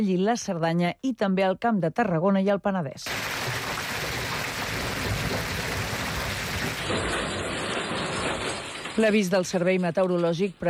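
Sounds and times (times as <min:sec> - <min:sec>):
speech: 0:00.0 - 0:03.6, 0:09.0 - 0:10.6
heavy rain: 0:03.1 - 0:09.2.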